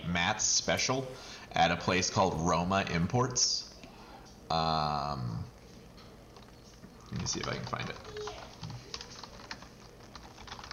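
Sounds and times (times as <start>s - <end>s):
speech: 0.2s - 3.7s, 4.5s - 5.5s, 7.1s - 8.5s
typing on a computer keyboard: 6.4s - 10.7s.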